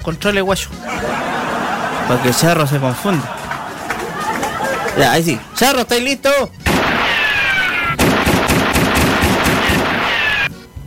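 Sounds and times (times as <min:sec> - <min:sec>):
speech: 0:00.0 - 0:01.4, 0:02.1 - 0:03.4, 0:05.0 - 0:06.6
laughter: 0:00.8 - 0:06.0
video game pistol gunfire: 0:06.7 - 0:10.3.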